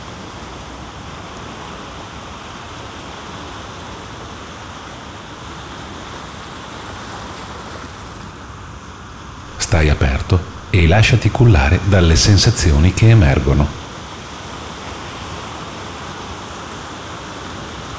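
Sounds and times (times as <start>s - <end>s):
surf washing on a beach: 0.0s - 9.4s, 13.9s - 17.9s
speech: 9.7s - 13.8s.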